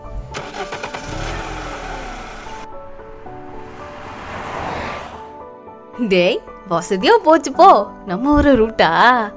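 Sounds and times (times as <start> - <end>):
car engine cranking, starting and idling: 0.0 - 5.3
speech: 6.0 - 9.3.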